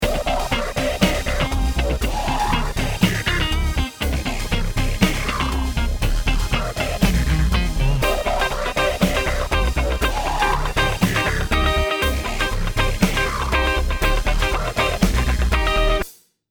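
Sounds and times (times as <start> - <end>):
backing track music: 0.0 - 16.1.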